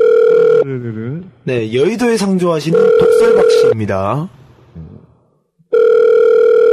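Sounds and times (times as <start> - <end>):
telephone ringing tone as a call connects: 0.0 - 0.6, 2.7 - 3.8, 5.7 - 6.7
speech: 0.7 - 4.9.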